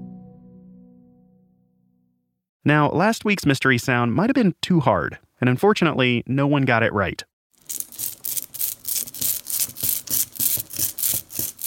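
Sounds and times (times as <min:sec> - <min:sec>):
speech: 0:02.6 - 0:07.8
rubber brayer rolling ink out across an inking plate: 0:07.6 - 0:11.6.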